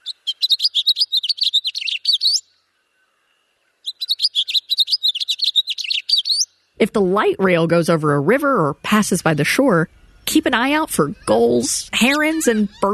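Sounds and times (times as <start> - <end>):
house finch singing loudly from a street tree: 0.0 - 2.5, 3.8 - 6.5, 10.0 - 12.9
speech: 6.8 - 12.9.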